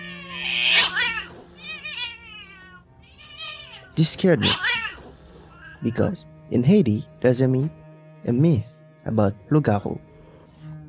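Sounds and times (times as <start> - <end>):
cats fighting on a balcony at night: 0.0 - 6.2
speech: 4.0 - 4.8, 5.8 - 10.1.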